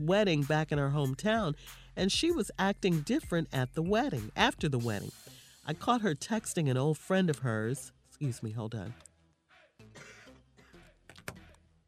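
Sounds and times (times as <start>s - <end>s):
speech: 0.0s - 9.1s
person coughing harshly with raspy throat-clearing: 9.9s - 10.8s.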